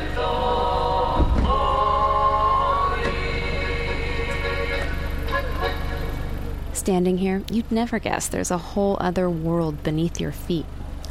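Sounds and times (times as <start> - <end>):
music-like tonal sounds: 0.0 - 6.7
car engines idling in a town square: 0.0 - 11.0
speech: 6.9 - 10.8.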